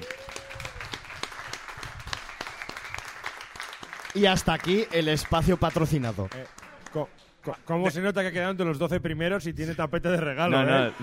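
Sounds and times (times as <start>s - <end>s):
applause with many hands clapping: 0.0s - 7.7s
speech: 4.2s - 11.0s.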